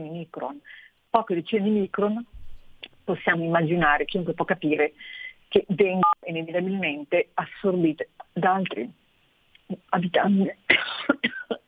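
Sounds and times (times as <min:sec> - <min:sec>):
speech: 0:00.0 - 0:09.0, 0:09.7 - 0:11.5
loud fit of coughing or sneezing: 0:10.7 - 0:11.6.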